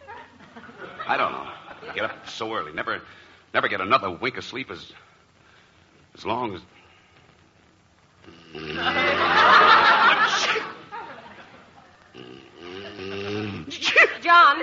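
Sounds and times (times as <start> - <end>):
laughter: 0.0 - 2.3, 8.8 - 12.0
speech: 1.1 - 5.1, 6.2 - 6.8, 8.2 - 9.1, 14.2 - 14.6
softer breathy and throaty vocal sounds: 8.2 - 9.2, 12.1 - 13.8
loud drawn-out sneeze with strained vocal buildup: 10.3 - 10.8.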